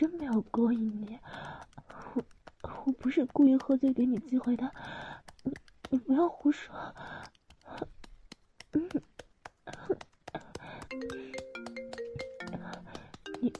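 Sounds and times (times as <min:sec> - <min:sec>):
speech: 0:00.0 - 0:02.3, 0:03.0 - 0:05.2, 0:06.1 - 0:07.4
phone ringing with melodic electronic ringtone for incoming call: 0:10.9 - 0:13.5.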